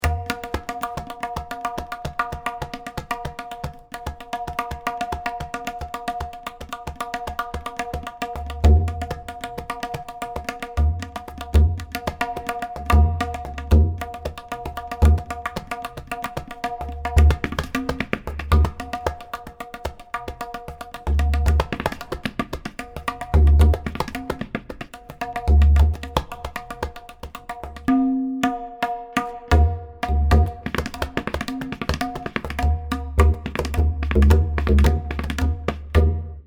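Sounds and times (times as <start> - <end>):
tabla solo: 0.0 - 36.4.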